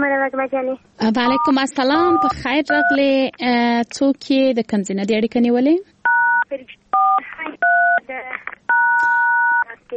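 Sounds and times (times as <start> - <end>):
speech: 0.0 - 5.9
telephone keypad button tones: 1.2 - 3.0, 7.0 - 8.0, 8.7 - 9.7.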